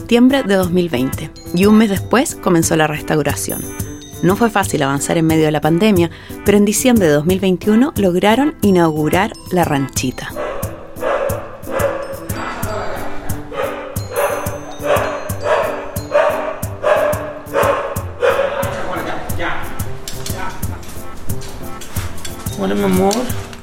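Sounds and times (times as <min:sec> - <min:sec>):
speech: 0:00.1 - 0:10.4, 0:22.7 - 0:23.4
noise: 0:09.2 - 0:23.6
female dog barking at a house: 0:10.4 - 0:19.4.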